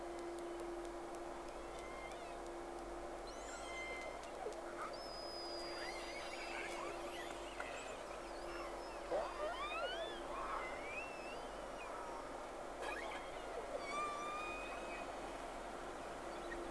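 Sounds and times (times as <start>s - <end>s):
continuous hiss: 0.0s - 16.6s
steady low hum: 0.0s - 16.6s
whale soft clicks and bursts: 0.0s - 16.6s
two whales whistling: 3.3s - 12.1s, 12.8s - 15.3s.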